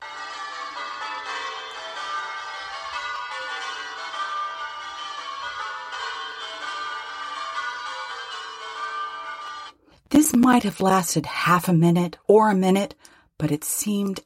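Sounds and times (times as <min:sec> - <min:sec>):
every bell in a house ringing together: 0:00.0 - 0:09.7
speech: 0:10.3 - 0:14.2.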